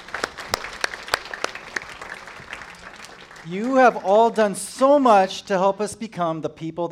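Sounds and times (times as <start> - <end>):
modest audience applauding: 0.0 - 5.1
speech: 3.4 - 6.9.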